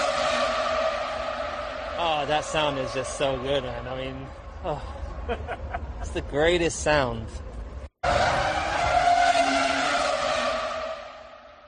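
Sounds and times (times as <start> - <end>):
V10 engine of an R25 Formula 1 car screaming at high revs: 0.0 - 4.2, 8.0 - 11.6
speech: 2.0 - 8.3
laughter: 4.6 - 6.3.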